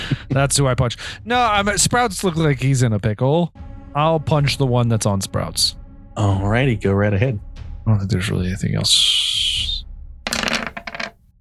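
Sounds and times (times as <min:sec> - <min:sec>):
speech: 0:00.4 - 0:09.2
dice rolling on a hard table: 0:10.3 - 0:11.2.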